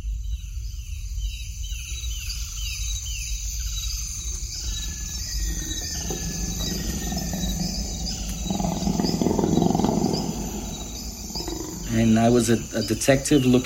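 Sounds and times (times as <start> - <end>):
jungle insects buzzing: 0.2 - 13.6
jungle birds chirping: 1.2 - 13.6
tiger roaring in the jungle: 5.4 - 12.7
speech: 12.4 - 13.6.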